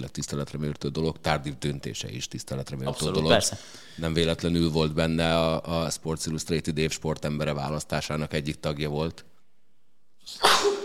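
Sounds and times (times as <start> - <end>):
speech: 0.0 - 9.3, 10.3 - 10.8
person sneezing: 10.2 - 10.8.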